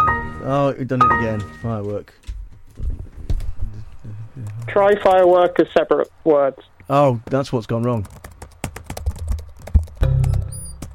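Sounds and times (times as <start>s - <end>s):
speech: 0.5s - 3.0s, 4.7s - 8.2s
typing on a computer keyboard: 7.6s - 10.9s.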